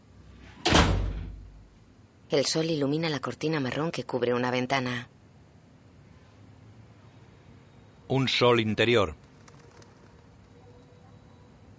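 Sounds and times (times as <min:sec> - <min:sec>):
door closing thud: 0:00.6 - 0:01.6
speech: 0:02.3 - 0:05.2, 0:08.1 - 0:09.2.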